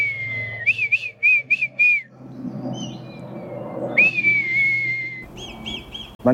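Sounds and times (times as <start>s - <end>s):
man whistling imitation of female red kite call: 0.0s - 2.1s, 3.9s - 6.1s.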